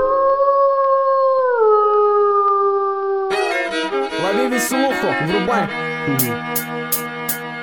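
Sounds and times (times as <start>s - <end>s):
wolf howling: 0.0s - 3.3s
speech: 4.6s - 7.2s.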